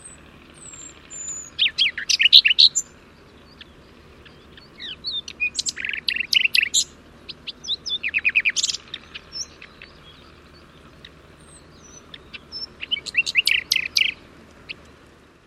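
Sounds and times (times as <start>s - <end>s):
bird singing high-pitched song of chirps, trill and whistles: 0.0s - 15.0s.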